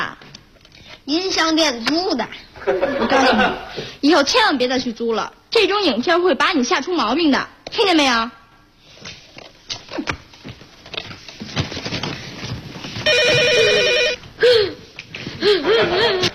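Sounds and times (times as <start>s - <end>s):
speech: 1.1s - 8.4s
laughter: 2.6s - 3.8s, 15.4s - 16.3s
telephone ringing: 13.0s - 14.3s.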